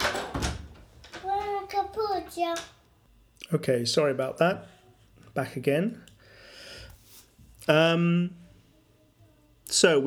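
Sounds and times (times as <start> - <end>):
door clunks as a door is answered: 0.0 - 1.4
speech: 2.4 - 2.8, 3.4 - 4.8, 5.4 - 6.1, 7.7 - 8.4, 9.7 - 10.0.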